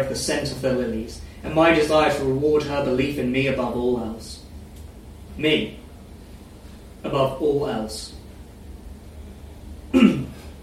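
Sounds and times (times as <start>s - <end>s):
speech: 0.0s - 4.4s, 5.4s - 5.8s, 7.0s - 8.2s
hiss: 0.0s - 10.6s
person coughing with a throat-clearing edge: 9.9s - 10.5s.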